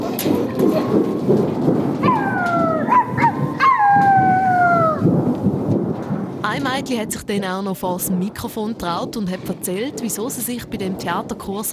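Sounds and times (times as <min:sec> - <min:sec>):
children imitating storm thunder and forest sounds: 0:00.0 - 0:05.6
overlapping descending howls: 0:02.0 - 0:05.1
speech: 0:06.8 - 0:11.7.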